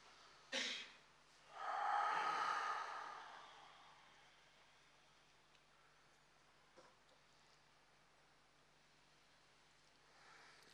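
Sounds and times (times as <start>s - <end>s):
deep inhale and exhale during a breathing exercise: 1.5s - 5.0s.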